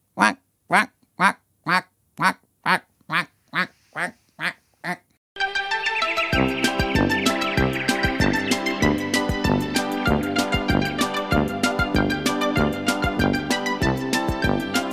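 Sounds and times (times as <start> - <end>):
quacking duck shoes squawking while a teacher walks: 0.2 - 5.1
bright music: 5.4 - 14.9.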